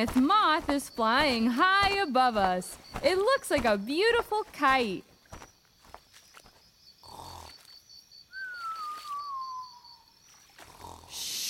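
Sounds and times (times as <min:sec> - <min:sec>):
speech: 0:00.0 - 0:05.1
cartoonish snoring of a giant sloth in a tree: 0:07.0 - 0:07.7, 0:10.7 - 0:11.4.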